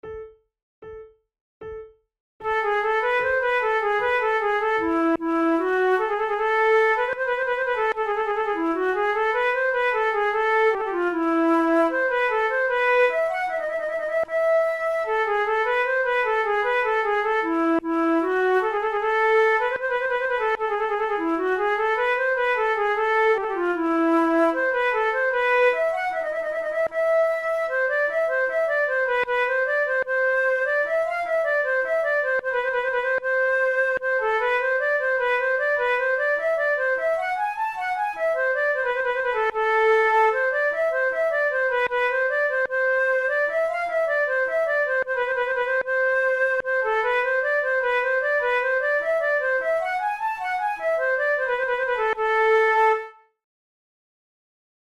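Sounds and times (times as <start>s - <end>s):
concert for two flutes: 2.5s - 53.2s.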